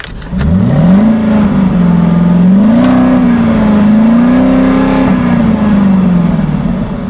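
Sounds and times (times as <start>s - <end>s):
car engine revving as a ride starts: 0.0s - 7.0s.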